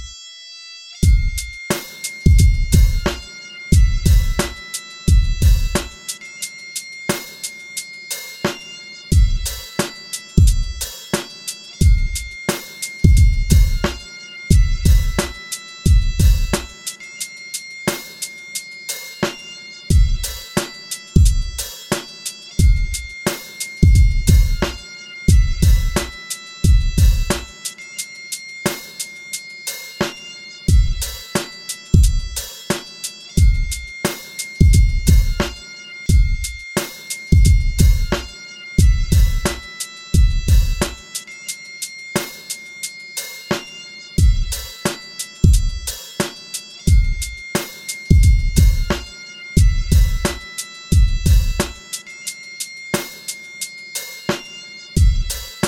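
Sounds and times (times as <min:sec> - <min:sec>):
drum kit: 0:01.0 - 0:06.2, 0:08.1 - 0:16.9, 0:18.9 - 0:27.7, 0:30.0 - 0:41.2, 0:43.1 - 0:52.0, 0:53.0 - 0:53.4, 0:54.0 - 0:55.6.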